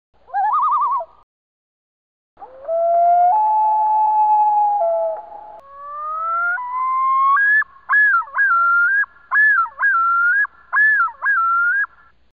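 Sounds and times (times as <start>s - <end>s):
loon call: 2.6s - 12.1s.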